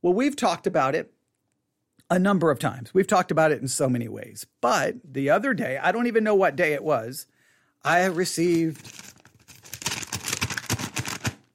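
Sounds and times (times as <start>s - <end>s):
speech: 0.0s - 1.2s, 2.1s - 9.1s
paper rustling and crinkling: 8.0s - 11.5s.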